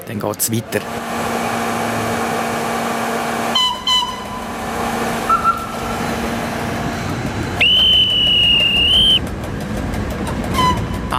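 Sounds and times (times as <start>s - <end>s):
oncoming train arriving with mechanical clatter: 0.0s - 11.1s
speech: 0.1s - 1.3s
train whistle toots and blast: 3.4s - 6.4s, 7.6s - 9.2s, 10.5s - 11.1s.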